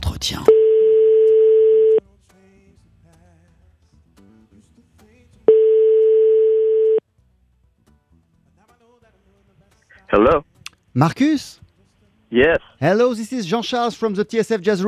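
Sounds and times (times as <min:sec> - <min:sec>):
speech: 0:00.2 - 0:00.6, 0:11.0 - 0:11.6, 0:12.3 - 0:14.8
telephone ringback tone on a call: 0:00.5 - 0:02.0, 0:05.5 - 0:07.0.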